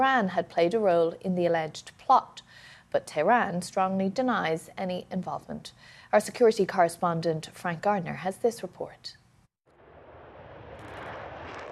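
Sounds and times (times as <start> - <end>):
speech: 0.0 - 9.2
jet roar of B-1 bomber taking off: 9.7 - 11.6.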